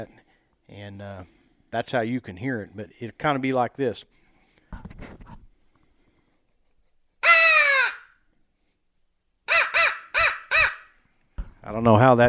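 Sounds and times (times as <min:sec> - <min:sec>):
speech: 0:00.0 - 0:04.9, 0:11.7 - 0:12.2
crow cawing: 0:07.2 - 0:08.2, 0:09.5 - 0:11.0.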